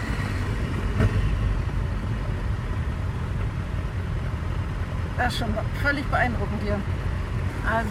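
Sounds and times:
hundreds of motorcycle engines idling and revving around a car in North Rhine-Westphalia: 0:00.0 - 0:07.8
speech: 0:05.2 - 0:07.8.

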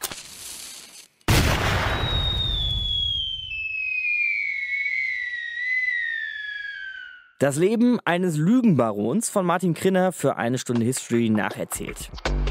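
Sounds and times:
loud cannon boom: 0:01.3 - 0:03.1
falling whistle of a flying cannon shot: 0:01.8 - 0:07.4
speech: 0:07.4 - 0:12.4.

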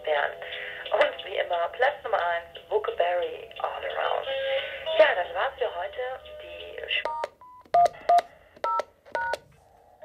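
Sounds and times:
speech: 0:00.1 - 0:00.6, 0:01.5 - 0:07.2
touch-tone phone dialing beeps: 0:07.1 - 0:09.4.

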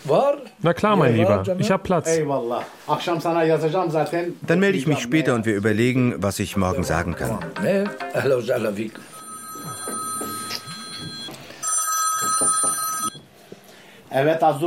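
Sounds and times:
speech: 0:00.1 - 0:09.1, 0:14.1 - 0:14.6
telephone ringing with steady electronic tones: 0:08.9 - 0:13.3.

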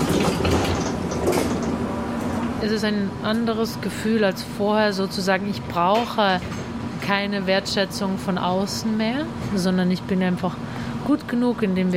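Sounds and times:
commuter train running from the countryside into the city: 0:00.0 - 0:03.6
speech: 0:02.6 - 0:11.9.

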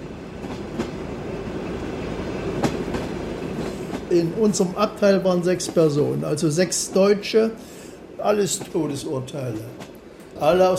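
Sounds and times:
train wheels clacking over track joints: 0:00.0 - 0:07.2, 0:08.5 - 0:10.7
train rolling along rails: 0:00.0 - 0:10.7
speech: 0:04.1 - 0:10.7.

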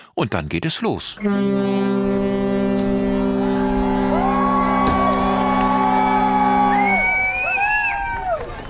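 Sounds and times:
speech: 0:00.2 - 0:02.8
deep sustained ship's horn blast: 0:01.2 - 0:07.2
crowds cheering with whoops and shouts on two ships: 0:03.2 - 0:08.6.

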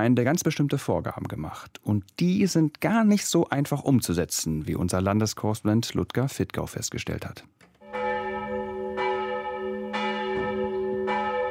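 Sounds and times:
speech: 0:00.0 - 0:07.6
church bells ringing for a worship service: 0:07.8 - 0:11.4.

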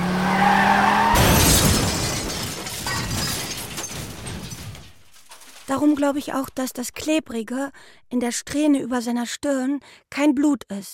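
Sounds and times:
car tires skidding and screeching: 0:00.0 - 0:03.1
car crash impact: 0:00.6 - 0:05.6
glass shattering in a car crash: 0:01.1 - 0:06.2
debris clattering after a car crash: 0:01.2 - 0:07.2
speech: 0:05.7 - 0:10.9.

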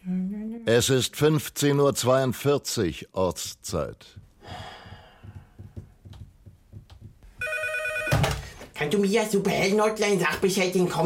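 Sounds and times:
speech: 0:00.7 - 0:04.7, 0:08.8 - 0:11.0
soft breathing and sighing: 0:04.4 - 0:06.0
telephone bell ringing with a bright electronic trill: 0:07.4 - 0:08.6.

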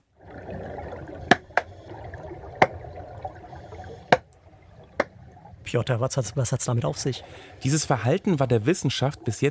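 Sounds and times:
low murky underwater rumble: 0:00.0 - 0:09.5
grey seals clapping underwater: 0:00.2 - 0:07.6
speech: 0:05.7 - 0:09.5.

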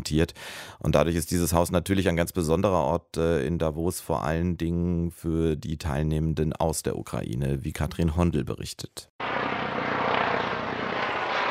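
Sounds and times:
speech: 0:00.0 - 0:09.5
helicopter flying overhead in Davos in the Swiss mountains: 0:09.2 - 0:11.5.

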